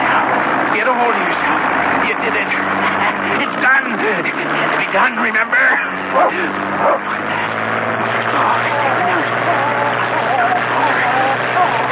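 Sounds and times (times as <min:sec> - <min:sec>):
steady dense noise: 0:00.0 - 0:11.9
speech: 0:03.6 - 0:07.3
dog barking and yipping: 0:05.7 - 0:07.1.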